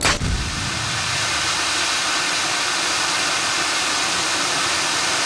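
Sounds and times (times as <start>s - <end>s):
grenades exploding: 0.0s - 2.2s
gas explosion: 0.0s - 5.1s.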